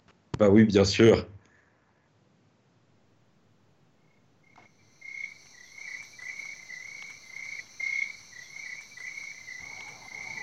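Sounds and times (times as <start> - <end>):
speech: 0.4 - 1.3
crickets trilling at night: 4.0 - 10.4
frog calls: 4.0 - 10.4
dense insect buzzing: 4.1 - 10.4.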